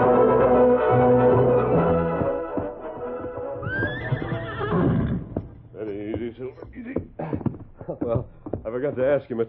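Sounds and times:
hooves clip-clopping on the ground: 0:00.2 - 0:09.4
horse snorting: 0:02.1 - 0:05.6
horse neighing: 0:03.6 - 0:05.6
speech: 0:09.2 - 0:09.4.

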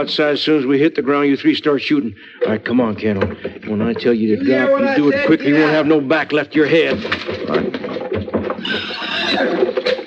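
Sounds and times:
speech: 0:00.0 - 0:07.9
hooves thudding: 0:02.4 - 0:10.0
horses whinnying: 0:08.6 - 0:10.0.

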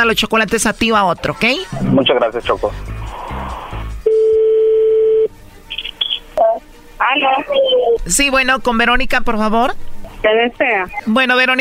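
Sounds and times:
speech: 0:00.0 - 0:02.9, 0:07.1 - 0:11.6
short higher beeps as a telephone number is dialed: 0:04.0 - 0:06.6.

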